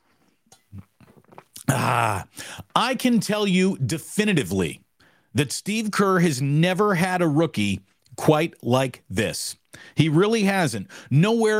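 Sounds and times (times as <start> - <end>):
person sipping coffee: 0.0 - 2.6
small wet mouth clicks: 0.5 - 1.7
low gulp: 0.6 - 2.6
speech: 1.7 - 11.5.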